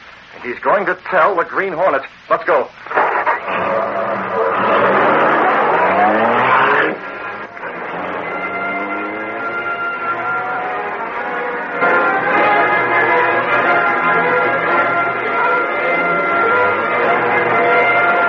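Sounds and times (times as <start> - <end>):
speech: 0.4 - 2.8
car engine revving and accelerating past a trolley car: 2.9 - 18.2.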